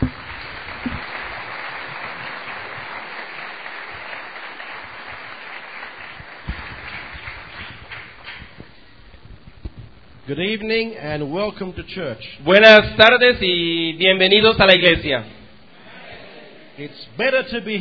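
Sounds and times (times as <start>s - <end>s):
church congregation applauding: 0.0s - 8.9s
speech: 10.3s - 15.4s, 16.8s - 17.7s.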